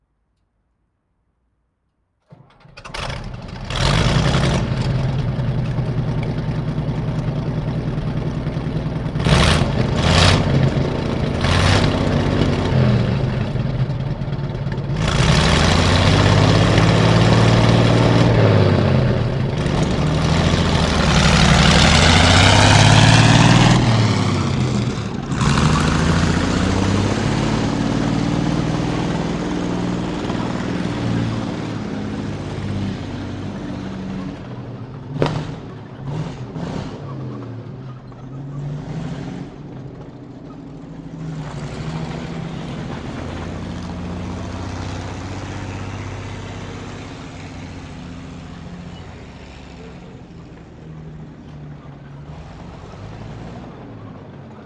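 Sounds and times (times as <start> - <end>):
Panther vehicle exterior engine starting, fast driving, stopping and shutting off: 2.3 - 54.6.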